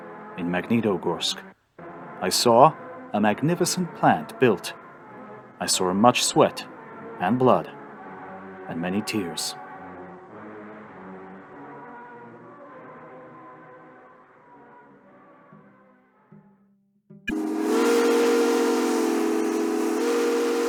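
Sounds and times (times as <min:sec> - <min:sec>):
speech: 0:00.4 - 0:01.6, 0:02.2 - 0:04.8, 0:05.6 - 0:07.8, 0:08.7 - 0:09.6
long deep steam whistle on a powerhouse: 0:17.3 - 0:20.6.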